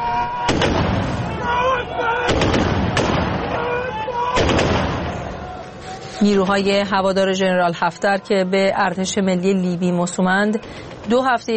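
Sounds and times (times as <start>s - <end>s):
dense rumbling urban background: 0.0s - 11.5s
bursts of gunfire in the city: 0.5s - 1.4s, 2.2s - 3.6s, 4.4s - 5.3s
loud sharp explosions in the city: 0.5s - 1.5s, 2.3s - 3.7s, 4.4s - 5.5s
speech: 6.2s - 11.5s.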